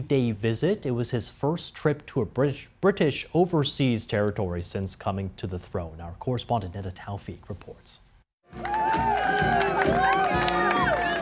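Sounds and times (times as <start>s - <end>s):
speech: 0.0s - 8.8s
large crowd cheering and shouting at a royal visit: 8.5s - 11.2s.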